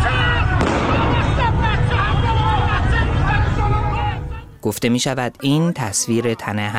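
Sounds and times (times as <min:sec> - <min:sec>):
crowd talking and shouting on a street in Tehran: 0:00.0 - 0:04.6
gunshot fired by security agents in a street in Tehran: 0:00.6 - 0:01.5
speech: 0:04.7 - 0:06.7.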